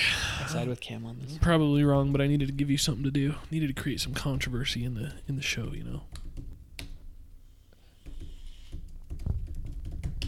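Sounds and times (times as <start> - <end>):
speech: 0.5 - 6.2
rapid forceful typing on a computer keyboard: 8.1 - 10.2.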